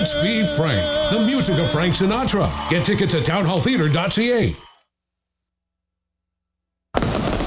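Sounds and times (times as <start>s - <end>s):
speech: 0.2s - 4.7s
fireworks exploding with dense crackling: 7.0s - 7.4s.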